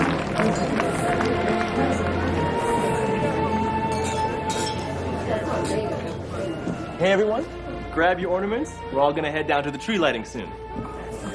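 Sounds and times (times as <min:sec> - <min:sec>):
crowd talking and celebrating: 0:00.0 - 0:11.3
speech: 0:00.5 - 0:00.9, 0:07.0 - 0:10.6
glasses clinking during a toast: 0:03.6 - 0:06.3.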